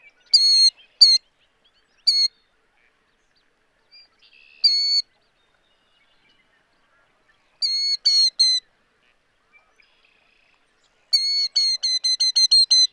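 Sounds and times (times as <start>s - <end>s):
killdeer call notes: 0.3s - 1.2s, 2.0s - 2.4s, 4.6s - 5.1s, 7.6s - 8.6s, 11.1s - 12.9s.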